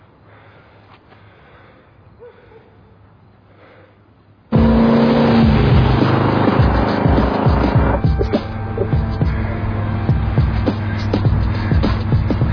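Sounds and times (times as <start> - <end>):
car driving with a loud steady engine drone: 4.5 - 12.5.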